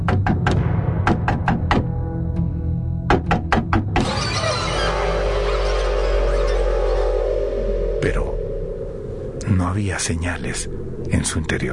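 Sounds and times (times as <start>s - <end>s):
insistent knocking on an apartment door: 0.0s - 1.9s, 3.1s - 4.0s
steady sustained drone: 4.2s - 11.7s
speech: 9.8s - 11.7s.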